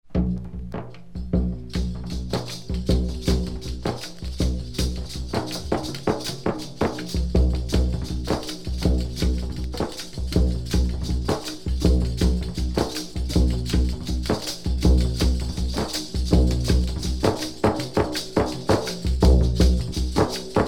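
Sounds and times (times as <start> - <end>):
Islamic drums: 0.0 - 20.6.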